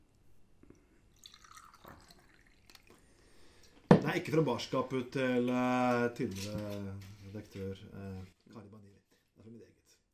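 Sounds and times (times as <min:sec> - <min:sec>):
Bristol Cream sherry poured into a glass: 0:01.1 - 0:03.1
sudden louder knock: 0:03.9 - 0:04.1
speech: 0:04.2 - 0:08.8.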